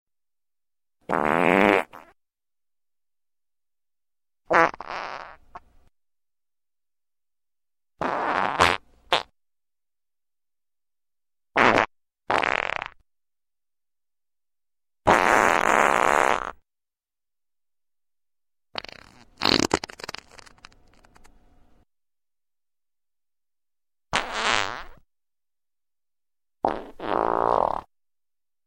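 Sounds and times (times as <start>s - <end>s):
fart noises: 1.0s - 2.2s, 4.5s - 5.6s, 8.0s - 9.4s, 11.6s - 13.0s, 15.0s - 16.6s, 18.8s - 21.3s, 24.1s - 25.0s, 26.6s - 27.9s.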